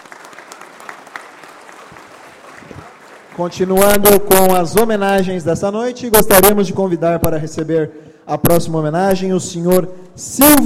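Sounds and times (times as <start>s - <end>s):
audience applause: 0.0s - 3.6s
speech: 3.4s - 10.6s.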